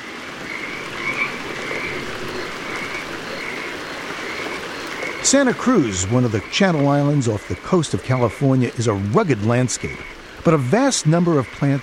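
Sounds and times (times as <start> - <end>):
Pacific chorus frogs croaking in chorus on Santa Cruz Island: 0.0 - 11.8
steady background noise: 0.0 - 11.8
speech: 5.2 - 11.8.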